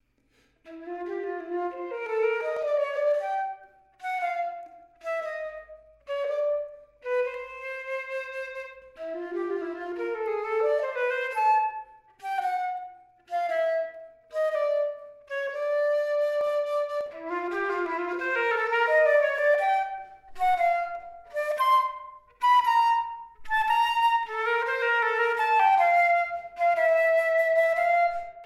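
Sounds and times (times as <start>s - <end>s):
flute: 0.6s - 28.4s.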